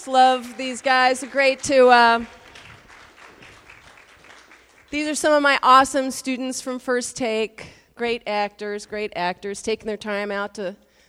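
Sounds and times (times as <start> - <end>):
speech: 0.0 - 2.4, 4.9 - 10.8
audience applause: 0.5 - 4.9.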